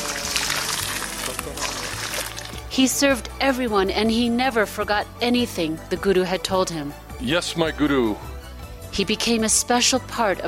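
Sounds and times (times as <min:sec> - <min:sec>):
water pouring in a splashing stream for a bath: 0:00.0 - 0:02.7
speech: 0:02.8 - 0:08.3, 0:08.9 - 0:10.4.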